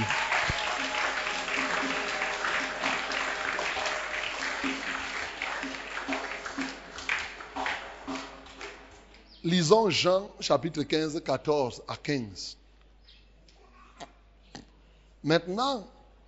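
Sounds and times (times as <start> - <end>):
scattered cheers and shouts: 0.0 - 7.9
large crowd applauding: 0.0 - 9.1
speech: 9.5 - 12.6, 15.2 - 16.0.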